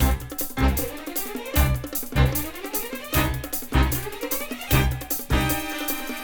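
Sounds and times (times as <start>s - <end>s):
sudden tension strings phonk loop: 0.0s - 4.0s.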